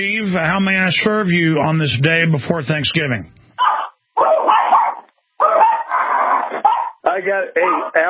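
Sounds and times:
speech: 0.0s - 3.4s, 7.3s - 8.0s
small Yorkie dog yapping: 3.6s - 7.0s.

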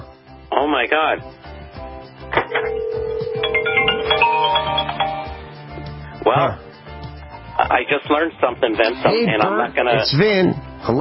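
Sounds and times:
speech: 0.6s - 1.4s, 6.2s - 6.6s, 7.6s - 10.9s
cell phone ringing inside a microwave oven: 2.4s - 5.5s.

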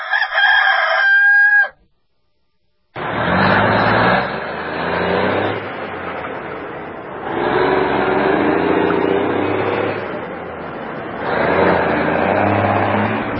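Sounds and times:
rooster crowing: 0.0s - 1.8s
heavy vehicle engine rumbling: 3.0s - 13.3s.

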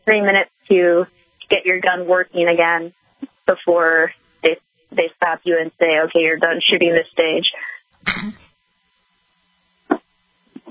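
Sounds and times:
speech: 0.0s - 8.4s
person coughing and clearing throat: 8.0s - 8.5s.

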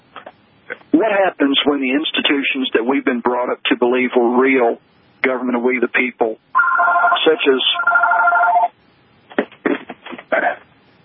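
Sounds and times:
speech: 1.0s - 8.0s
telephone ringing with electronic trill: 6.6s - 8.8s.

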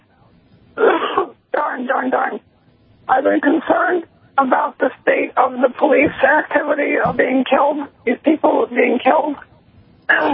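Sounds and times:
person clearing throat: 0.8s - 1.3s
speech: 3.1s - 9.5s, 10.1s - 10.3s.

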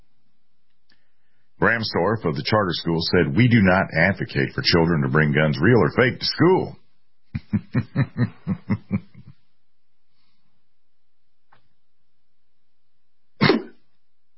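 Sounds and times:
speech: 1.6s - 6.8s, 7.5s - 9.2s
laughter: 7.4s - 9.4s
held-back coughs: 13.4s - 13.8s.

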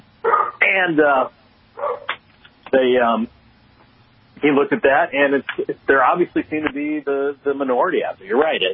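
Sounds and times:
dogs barking: 0.2s - 0.6s, 1.8s - 2.2s
speech: 0.7s - 2.0s, 2.7s - 3.4s, 4.4s - 8.7s.

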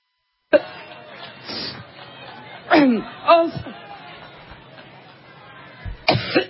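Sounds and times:
noisy crowd-like background: 0.5s - 6.4s
laughter: 0.6s - 6.4s
woman clearing her throat: 6.1s - 6.4s
woman's coughing fit: 6.1s - 6.4s.

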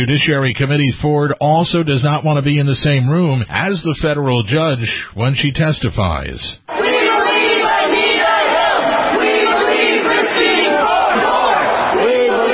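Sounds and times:
speech: 0.0s - 6.9s
crowd of protesters shouting and chanting against a Supreme Court nomination: 6.7s - 12.5s.

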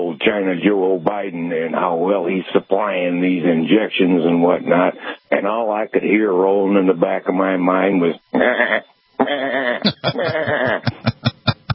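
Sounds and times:
speech: 0.3s - 11.0s
sheep bleating: 8.4s - 10.9s
laughter: 9.8s - 11.7s.

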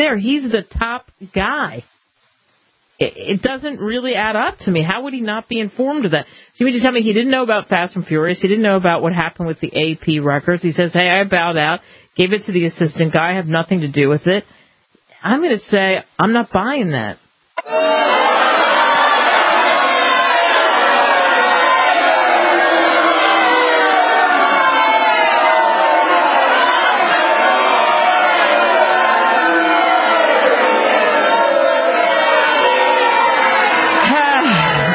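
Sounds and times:
speech: 0.0s - 2.0s, 3.0s - 14.6s, 15.2s - 18.2s
large crowd jeering and shouting in disapproval: 17.6s - 34.9s.

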